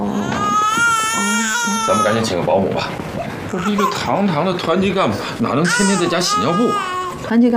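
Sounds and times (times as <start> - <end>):
infant crying in a loud sustained wail: 0.1 - 2.3, 3.5 - 4.3, 5.5 - 7.3
speech: 1.9 - 7.5.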